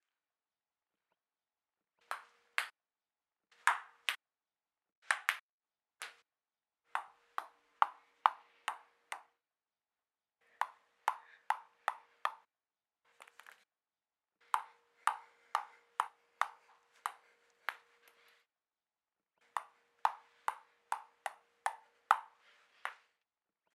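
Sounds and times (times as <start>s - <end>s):
table tennis ball bouncing: 3.6s - 4.2s, 7.0s - 9.3s, 10.6s - 12.5s, 14.6s - 17.9s, 19.5s - 23.0s.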